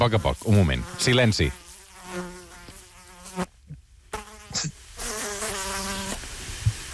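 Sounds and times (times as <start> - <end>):
speech: 0.0 - 2.2
mosquito buzzing near microphone: 0.5 - 3.5, 4.1 - 6.2.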